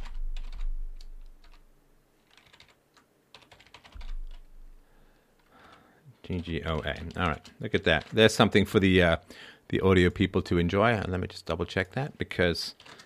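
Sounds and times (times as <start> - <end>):
typing on a computer keyboard: 0.0 - 1.6, 2.2 - 4.4, 6.4 - 8.3, 12.7 - 13.0
speech: 6.3 - 13.0.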